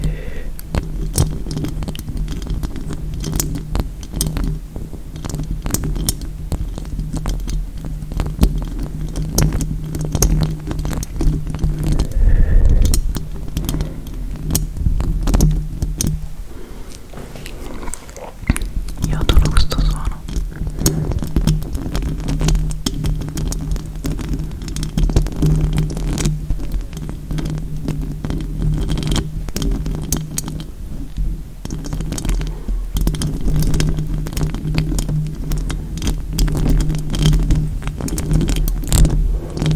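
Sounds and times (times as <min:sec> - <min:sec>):
long fake fingernails tapping and scratching: 0:00.0 - 0:39.7
rustling: 0:00.0 - 0:39.7
steady low hum: 0:11.5 - 0:21.9.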